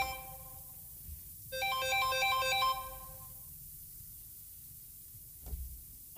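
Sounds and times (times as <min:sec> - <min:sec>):
phone ringtone chiming in bright electronic tones: 0:00.0 - 0:00.4, 0:01.6 - 0:03.2
low hum: 0:00.0 - 0:06.1.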